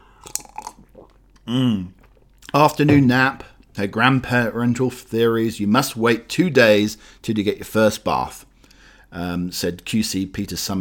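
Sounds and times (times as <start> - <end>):
person sipping tea with wet slurps: 0.2 - 1.2
speech: 1.5 - 8.5, 9.1 - 10.8.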